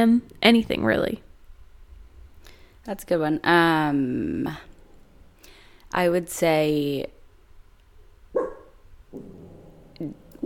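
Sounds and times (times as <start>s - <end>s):
speech: 0.0s - 1.2s, 2.8s - 4.7s, 5.9s - 7.2s, 10.0s - 10.2s
dog barking: 8.4s - 8.8s.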